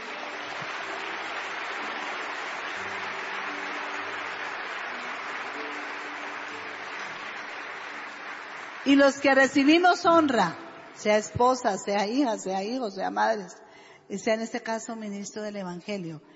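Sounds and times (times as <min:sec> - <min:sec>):
large crowd applauding: 0:00.0 - 0:11.0
speech: 0:08.9 - 0:16.3.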